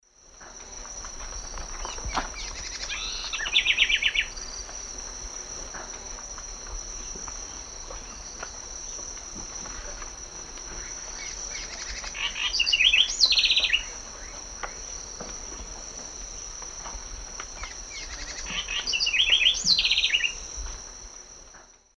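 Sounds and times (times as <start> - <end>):
Troglodytes aedon singing in S. America Eastern Lowlands: 1.8 - 4.5, 10.8 - 14.4, 17.6 - 20.4.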